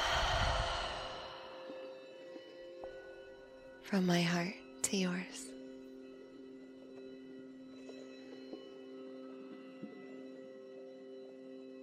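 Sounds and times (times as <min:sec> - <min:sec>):
person breathing slowly during a meditation: 0:00.0 - 0:02.7
speech: 0:03.9 - 0:05.5.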